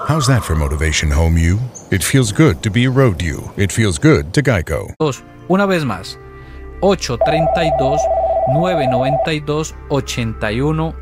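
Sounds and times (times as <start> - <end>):
speech: 0.1 - 6.2, 6.8 - 11.0
electronic telephone tone signalling an incoming call: 7.2 - 9.3.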